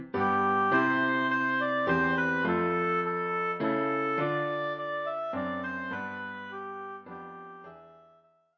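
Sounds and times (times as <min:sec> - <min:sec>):
oboe playing a Christmas carol: 0:00.2 - 0:08.3.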